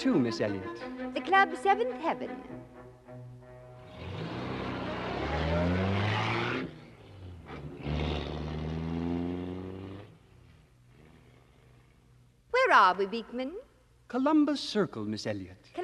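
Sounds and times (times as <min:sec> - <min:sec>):
speech: 0:00.0 - 0:02.8, 0:12.7 - 0:15.8
convertible car engine revving and accelerating: 0:03.8 - 0:11.8.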